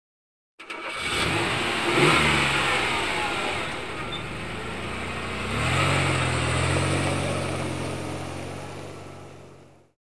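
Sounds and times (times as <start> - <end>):
car engine starting up and revving: 0.6 - 9.8.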